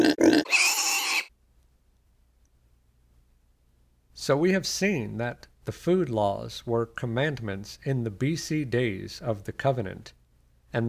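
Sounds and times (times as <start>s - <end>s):
pig grunting and oinking: 0.0s - 1.3s
speech: 4.2s - 10.8s.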